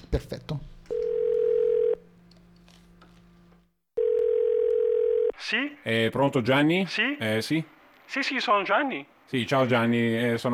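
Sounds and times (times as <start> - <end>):
speech: 0.1 - 0.8, 5.5 - 10.5
telephone line tone: 0.9 - 2.0, 4.0 - 5.4.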